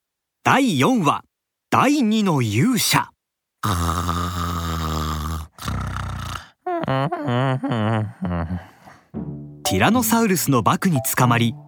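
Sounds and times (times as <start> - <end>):
speech: 0.5 - 4.6, 6.9 - 11.6
voice imitating loud throaty snoring of a sleeping velociraptor character: 3.6 - 8.9.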